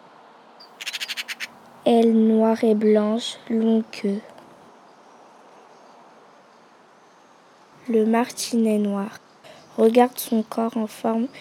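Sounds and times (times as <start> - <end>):
Eurasian magpie chattering under horse chestnut trees: 0.6 - 1.6
speech: 1.8 - 4.3, 7.9 - 9.2, 9.8 - 11.3.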